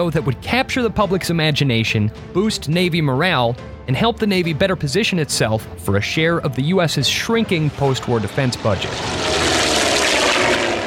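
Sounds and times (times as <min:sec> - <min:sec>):
speech: 0:00.0 - 0:09.7
Grumman F6F-5 Hellcat carrier-launched propeller plane engine roaring overhead: 0:07.3 - 0:10.8.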